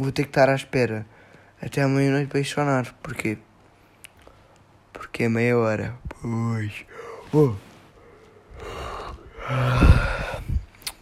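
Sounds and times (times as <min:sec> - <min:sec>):
speech: 0:00.0 - 0:03.5, 0:05.0 - 0:07.7, 0:09.5 - 0:10.2
person yawning: 0:08.6 - 0:10.6.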